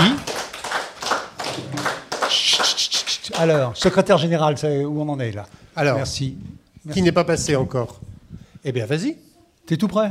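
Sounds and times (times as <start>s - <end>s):
hand clapping as applause: 0.0s - 4.0s
speech: 3.4s - 10.0s.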